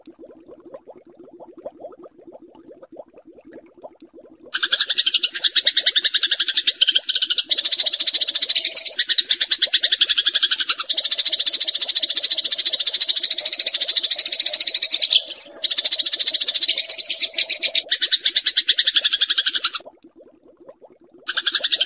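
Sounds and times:
bar-winged prinia song: 4.6s - 19.8s.

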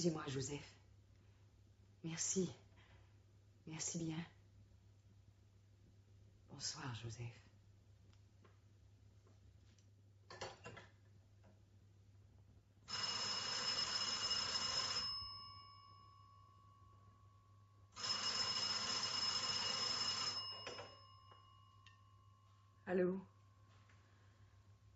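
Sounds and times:
speech: 0.0s - 0.8s, 2.0s - 2.6s, 3.7s - 4.4s, 6.5s - 7.5s, 22.9s - 23.3s
old telephone bell ringing: 12.9s - 22.4s.

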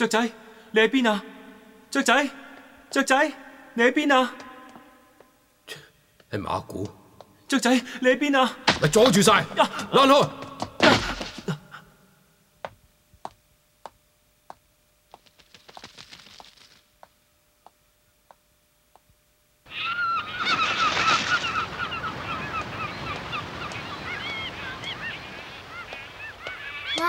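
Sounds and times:
speech: 0.0s - 1.3s, 1.9s - 4.4s, 5.7s - 11.1s
sharp regular ticks: 15.1s - 17.8s
flock of seagulls calling: 19.7s - 27.0s.

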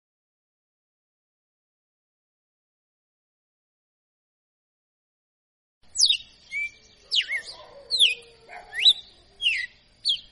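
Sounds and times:
red-cowled cardinal tutor bird singing whistled slurs: 5.9s - 10.3s.

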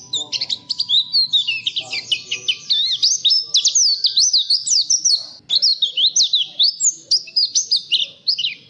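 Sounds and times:
faint low background noise: 0.0s - 8.6s
nightingale singing on a tutor recording for caged songbirds: 0.0s - 8.6s.

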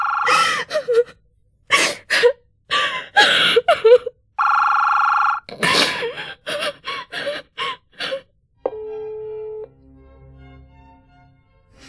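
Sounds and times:
telephone with steady electronic buzzing ring: 0.0s - 0.7s, 4.4s - 5.5s, 8.7s - 9.7s
gasping sobbing breaths: 0.3s - 4.2s, 5.5s - 8.3s
low steady electronic tone: 8.7s - 9.8s.

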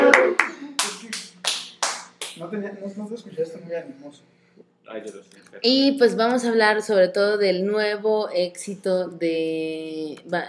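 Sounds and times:
handclaps: 0.0s - 2.4s
speech: 2.4s - 10.4s.

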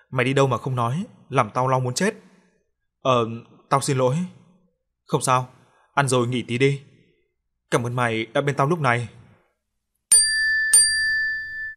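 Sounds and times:
speech: 0.1s - 2.3s, 3.0s - 4.4s, 5.1s - 6.9s, 7.7s - 9.2s
phone text message notification dings: 10.1s - 11.7s.

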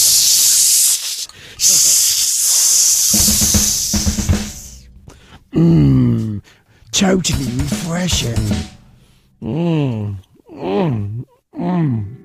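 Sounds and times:
drink can opened with a tin opener hissing: 0.0s - 4.9s
speech: 5.6s - 6.0s, 7.0s - 8.8s, 9.4s - 12.2s.

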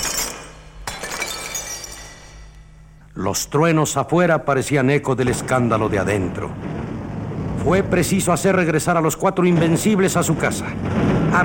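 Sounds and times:
glass fragments tinkling and scattering: 0.0s - 2.8s
lamps and glassware smashed with a broom handle: 0.0s - 2.8s
speech: 3.2s - 6.8s, 7.6s - 11.4s.

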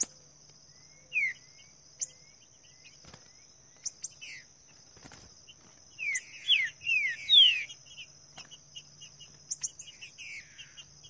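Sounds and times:
continuous shrill insect hum: 0.0s - 11.0s
Green-winged saltator singing in the bush: 0.7s - 4.5s, 5.5s - 11.0s.

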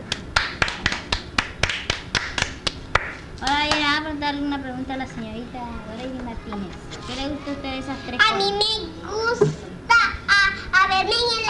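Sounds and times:
applause of hand claps for a young girl: 0.1s - 3.8s
speech: 4.0s - 9.9s, 10.9s - 11.4s.

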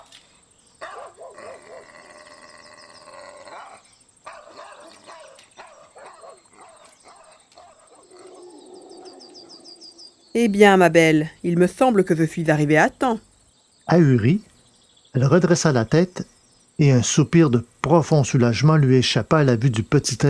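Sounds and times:
steady hiss: 0.0s - 20.2s
large mastiff-type dog barking furiously: 0.8s - 2.3s, 3.2s - 9.6s
speech: 10.4s - 13.3s, 13.9s - 14.5s, 15.1s - 20.2s.

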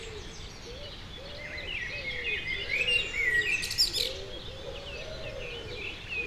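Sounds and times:
wood pigeon cooing in the morning near the Sierroz in Aix-les-Bains France: 1.2s - 6.2s.

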